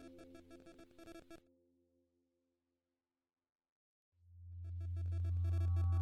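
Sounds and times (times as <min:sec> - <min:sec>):
loud deep droning tone: 0:04.3 - 0:06.0.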